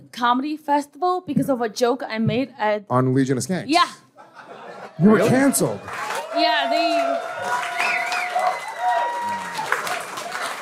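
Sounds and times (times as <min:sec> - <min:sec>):
speech: 0:00.1 - 0:04.1, 0:05.0 - 0:07.5
laughter: 0:04.2 - 0:05.9
voices whooping: 0:05.2 - 0:10.2
audience clapping: 0:05.3 - 0:10.5.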